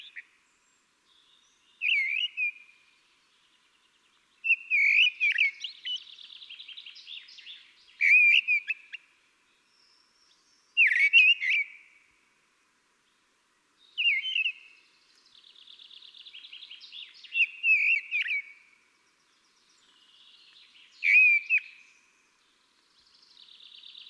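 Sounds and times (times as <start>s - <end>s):
common blackbird Turdus merula singing: 1.1s - 3.5s, 4.4s - 9.0s, 9.6s - 11.9s, 13.8s - 22.2s, 23.0s - 24.0s.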